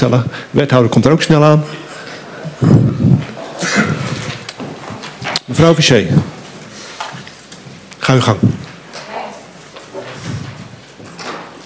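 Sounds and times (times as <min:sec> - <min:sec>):
speech: 0:00.0 - 0:01.8, 0:05.5 - 0:06.3, 0:08.1 - 0:08.6
chair scraping and bumping across a hard floor: 0:01.7 - 0:05.4, 0:09.8 - 0:11.6.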